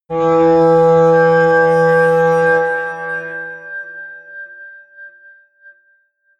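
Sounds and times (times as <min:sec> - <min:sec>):
atmospheric feedback synthesizer drone: 0:00.1 - 0:04.0.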